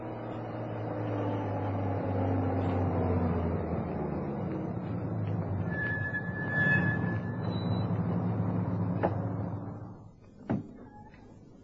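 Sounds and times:
police truck heavy engine rumbling driving into a courtyard: 0:00.0 - 0:10.4
faint high squeal: 0:05.6 - 0:08.7, 0:10.8 - 0:11.3.

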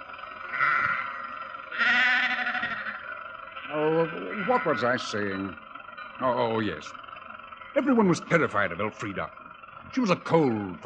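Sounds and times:
sheep bleating on the road: 0:00.4 - 0:05.5
speech: 0:04.5 - 0:05.6, 0:06.2 - 0:07.0, 0:07.8 - 0:10.8.

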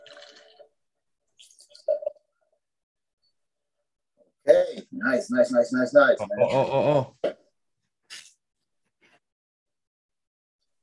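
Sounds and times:
drink being poured: 0:00.0 - 0:02.6
speech: 0:05.0 - 0:07.4.

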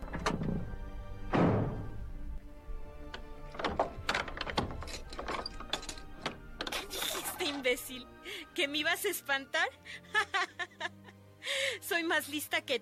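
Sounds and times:
house door thudding shut with a heavy impact: 0:00.0 - 0:02.1, 0:03.2 - 0:06.7
wooden and metallic clunks and rattles of a door being barred and latched: 0:00.0 - 0:07.7
speech: 0:07.7 - 0:11.0, 0:11.6 - 0:12.7
laughter: 0:10.0 - 0:11.2.

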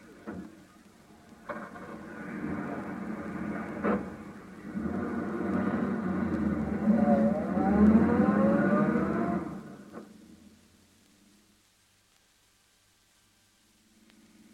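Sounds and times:
taxi engine humming while driving: 0:00.0 - 0:11.4.

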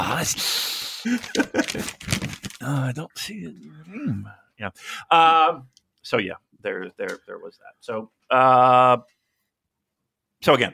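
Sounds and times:
speech: 0:00.0 - 0:09.2, 0:10.4 - 0:10.7
voice mimicking shuffling papers with breathy hiss and sputtering bursts: 0:00.8 - 0:03.5.

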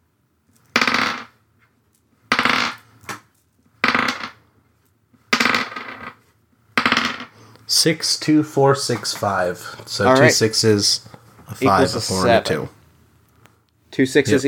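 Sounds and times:
dice rattle: 0:00.5 - 0:01.3, 0:01.9 - 0:04.4, 0:05.4 - 0:06.2, 0:06.8 - 0:07.3
five dice rolled for a control check in a tabletop game: 0:00.6 - 0:01.3, 0:02.3 - 0:04.4, 0:05.3 - 0:06.2, 0:06.8 - 0:07.3
speech: 0:07.7 - 0:12.8, 0:13.9 - 0:14.4.

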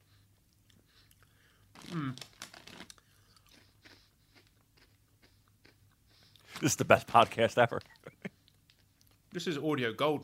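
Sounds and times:
crunching and chewing crisps: 0:00.4 - 0:07.2
bag of durian-flavoured crisps crinkling: 0:01.7 - 0:03.0
rustling: 0:01.7 - 0:03.0
speech: 0:06.6 - 0:08.0, 0:09.4 - 0:10.2.

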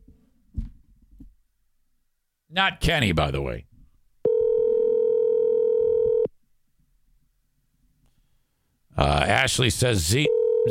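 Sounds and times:
speech: 0:02.6 - 0:03.7, 0:09.0 - 0:10.6
telephone ringing tone on an outgoing call through the handset: 0:04.2 - 0:06.3, 0:10.2 - 0:10.6.

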